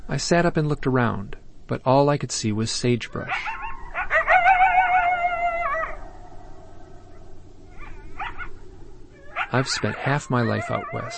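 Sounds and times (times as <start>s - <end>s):
low steady hiss: 0.0s - 11.1s
speech: 0.1s - 3.6s, 9.5s - 11.1s
coyotes howling: 3.1s - 11.1s
coyote short yips: 3.2s - 6.0s, 7.7s - 11.1s.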